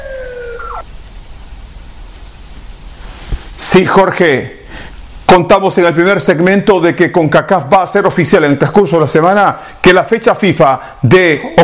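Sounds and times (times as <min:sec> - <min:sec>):
brief electronic siren tone bending downward: 0:00.0 - 0:00.9
low hiss: 0:00.0 - 0:11.6
speech: 0:03.6 - 0:04.6, 0:05.3 - 0:11.6.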